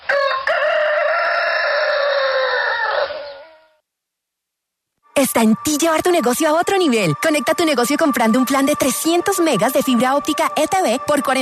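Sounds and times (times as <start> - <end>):
rooster crowing: 0.0 - 3.8
speech: 5.2 - 11.4.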